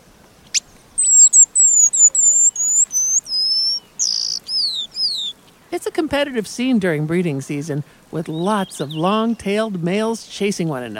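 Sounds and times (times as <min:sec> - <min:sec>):
paradise whydah whistled call: 0:00.4 - 0:05.6, 0:08.3 - 0:09.6
speech: 0:06.1 - 0:10.9.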